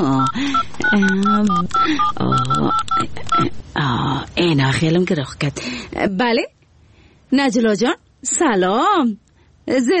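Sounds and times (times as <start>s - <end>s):
telephone keypad tones as a phone number is dialed: 0.0s - 3.6s
speech: 0.0s - 6.6s, 7.3s - 9.9s.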